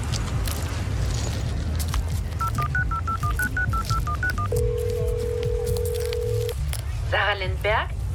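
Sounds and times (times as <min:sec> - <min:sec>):
loud rumbling noise: 0:00.0 - 0:08.1
mobile phone keypad dialing tones: 0:02.4 - 0:06.6
speech: 0:07.6 - 0:08.0.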